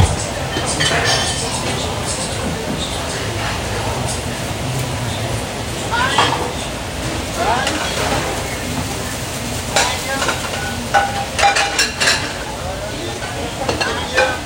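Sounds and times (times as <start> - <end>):
dishes and pans clinking and clattering: 0.0 - 3.6, 6.0 - 6.7, 7.5 - 9.1, 9.7 - 14.4
faint voices murmuring: 0.0 - 14.4
food frying in a restaurant kitchen during breakfast prep: 0.0 - 14.4.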